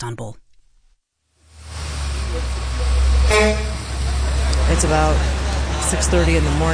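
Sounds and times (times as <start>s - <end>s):
speech: 0.0s - 0.4s, 4.8s - 6.7s
street noise: 1.4s - 6.7s
bus engine rumble pulling up on a street: 1.5s - 6.7s
bus horn toot: 1.7s - 4.7s.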